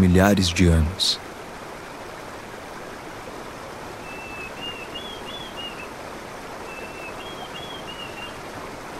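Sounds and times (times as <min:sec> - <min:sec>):
speech: 0:00.0 - 0:01.3
flowing stream water swelling from rain upstream: 0:00.0 - 0:08.9
whistled bird calls: 0:04.0 - 0:06.0, 0:06.6 - 0:08.4.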